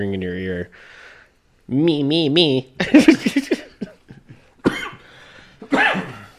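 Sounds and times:
speech: 0:00.0 - 0:01.1, 0:01.7 - 0:03.6
laughter: 0:02.8 - 0:04.5
person coughing harshly: 0:03.2 - 0:06.3.

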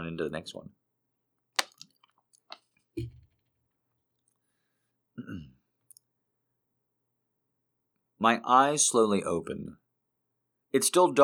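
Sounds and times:
speech: 0:00.2 - 0:00.8, 0:08.2 - 0:09.8, 0:10.7 - 0:11.2
person sipping water: 0:01.6 - 0:02.1.

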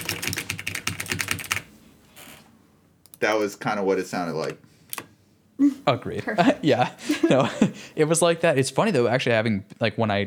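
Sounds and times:
computer keyboard typing: 0:00.0 - 0:01.7
speech: 0:03.2 - 0:04.7, 0:05.6 - 0:10.2
laughter: 0:06.2 - 0:08.0.

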